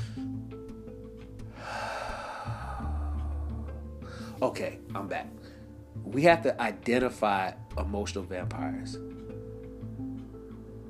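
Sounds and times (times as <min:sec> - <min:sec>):
deep breath during a guided breathing exercise: 0:00.0 - 0:00.4, 0:01.5 - 0:04.4
speech: 0:04.4 - 0:09.2.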